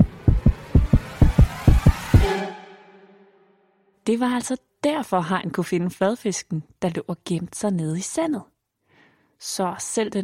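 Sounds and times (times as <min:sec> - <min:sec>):
fast thumping heartbeat sound effect of a flatfish: 0:00.0 - 0:02.3
brief hum: 0:00.0 - 0:03.6
speech: 0:04.1 - 0:08.5, 0:09.4 - 0:10.2.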